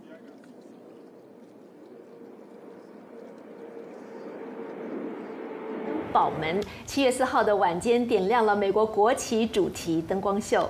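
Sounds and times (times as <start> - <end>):
aircraft passing overhead: 0.0 - 8.2
speech: 6.1 - 10.6.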